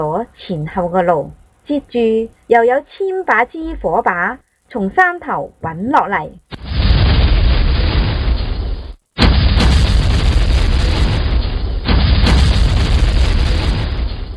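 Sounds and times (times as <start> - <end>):
speech: 0.0 - 6.6
booming explosions of carts packed with gunpowder and fireworks: 6.5 - 14.3.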